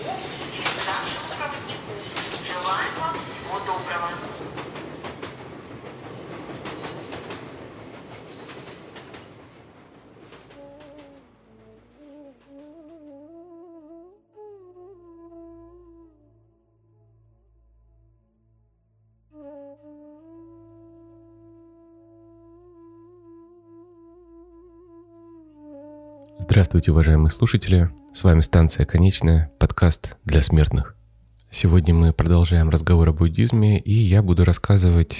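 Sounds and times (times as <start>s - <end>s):
train running on rails with clickety-clack of wheels: 0.0s - 11.3s
speech: 26.5s - 35.1s.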